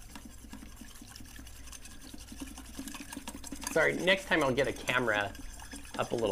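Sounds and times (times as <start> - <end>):
tiny whisk mixing a liquid blend with vanilla: 0.0 - 6.2
speech: 3.8 - 5.4, 6.0 - 6.2.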